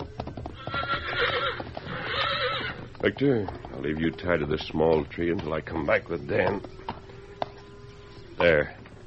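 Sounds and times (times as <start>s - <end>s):
horse hooves clip-clopping: 0.0s - 9.0s
horse whinnying loudly: 0.5s - 3.8s
speech: 3.0s - 6.8s, 8.4s - 8.8s.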